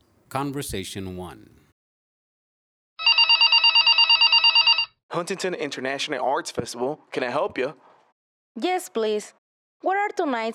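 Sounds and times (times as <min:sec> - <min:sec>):
speech: 0:00.3 - 0:01.6, 0:05.2 - 0:07.9, 0:08.6 - 0:10.5
telephone bell ringing: 0:03.0 - 0:05.0.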